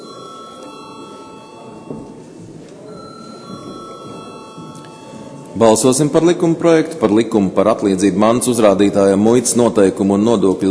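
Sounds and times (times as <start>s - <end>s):
electric bell ringing in a parliament chamber before a vote: 0.0s - 2.3s, 2.9s - 5.7s
speech: 5.6s - 10.6s.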